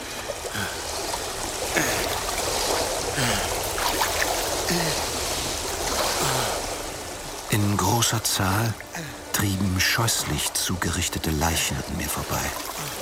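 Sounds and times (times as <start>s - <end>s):
paddle strokes of a boat drifting downstream: 0.0s - 7.2s
river water babbling and gurgling: 0.0s - 13.0s
speech: 7.6s - 13.0s.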